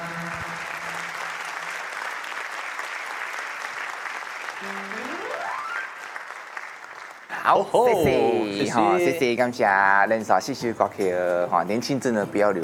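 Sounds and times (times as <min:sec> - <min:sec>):
audience applauding: 0:00.0 - 0:07.9
short rising electronic tone: 0:04.6 - 0:06.0
speech: 0:07.4 - 0:12.6.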